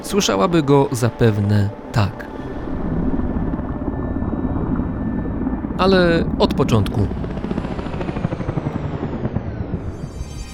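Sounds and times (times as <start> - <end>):
speech: 0.0 - 2.3, 5.8 - 7.4
SH-3 Sea King rescue helicopter rotor chop: 2.3 - 10.2.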